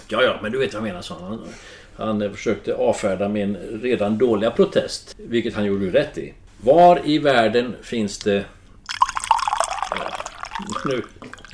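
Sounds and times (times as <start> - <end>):
speech: 0.1 - 8.6, 9.9 - 11.5
coffee pouring into a cup: 8.8 - 11.5.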